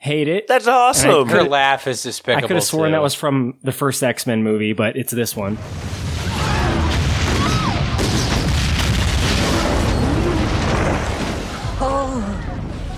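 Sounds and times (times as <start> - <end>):
speech: 0.0 - 6.1
ship explosion roar: 5.5 - 12.9.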